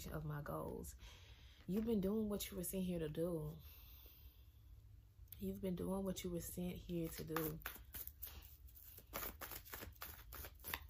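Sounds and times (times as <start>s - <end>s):
speech: 0.0s - 3.7s, 5.4s - 8.1s
deck of oracle cards being shuffled: 6.9s - 10.8s.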